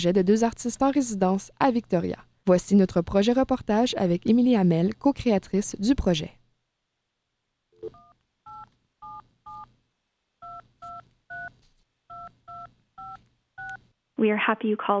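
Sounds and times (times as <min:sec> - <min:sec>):
speech: 0:00.0 - 0:06.4, 0:14.2 - 0:14.9
touch-tone phone keypad dual-tone beeps dialing a telephone line: 0:07.8 - 0:09.7, 0:10.4 - 0:11.5, 0:12.1 - 0:13.8.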